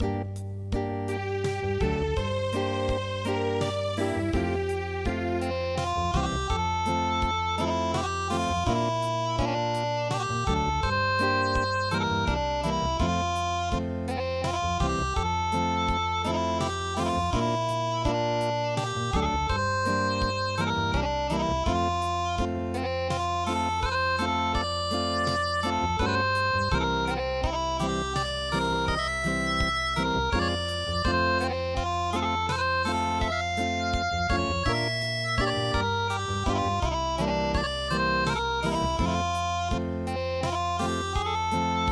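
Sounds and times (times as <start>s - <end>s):
traditional Swiss acoustic music: 0.0s - 41.8s.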